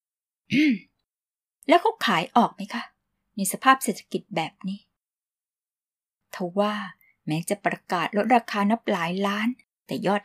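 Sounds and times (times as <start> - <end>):
speech: 0.5 - 0.9, 1.6 - 4.9, 6.3 - 10.2
short voiced throat clearing: 0.5 - 1.0.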